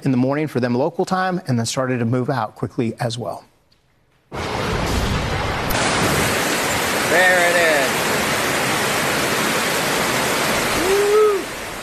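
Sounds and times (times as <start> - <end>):
speech: 0.0 - 3.5, 7.1 - 7.7
raging river rushing across land hit by a hurricane: 4.4 - 11.8.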